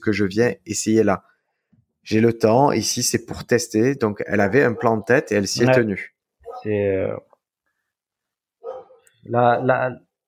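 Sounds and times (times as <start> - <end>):
speech: 0.0 - 1.3, 2.0 - 7.3, 9.2 - 10.0
dog barking: 4.5 - 5.1, 6.4 - 6.7, 8.6 - 9.9.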